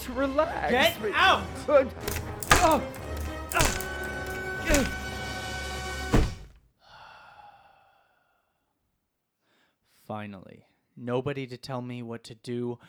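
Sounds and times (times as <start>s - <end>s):
speech: 0.0s - 3.8s, 4.7s - 5.0s, 10.1s - 12.8s
heavy axe thunking as it is set down: 2.0s - 5.0s, 6.1s - 6.6s.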